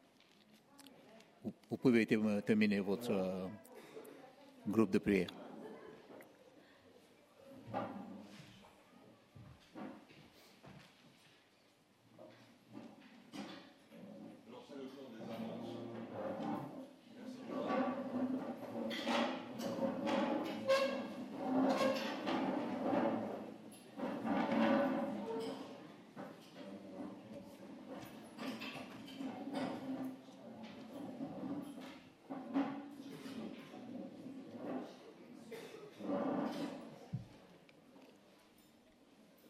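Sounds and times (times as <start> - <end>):
speech: 1.4 - 3.7, 4.6 - 5.4
chairs scraping and dragging across a hard floor: 7.6 - 8.7, 9.4 - 10.8, 15.1 - 37.5.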